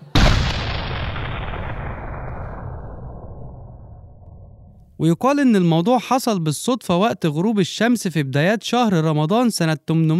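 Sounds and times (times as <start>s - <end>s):
cannon blast: 0.0s - 4.9s
speech: 5.0s - 10.1s.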